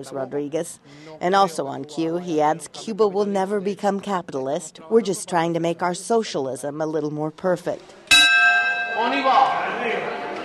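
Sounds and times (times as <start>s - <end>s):
speech: 0.0s - 8.0s, 9.0s - 10.1s
bell ringing in an old city to mark the start of a museum tour: 8.1s - 10.0s.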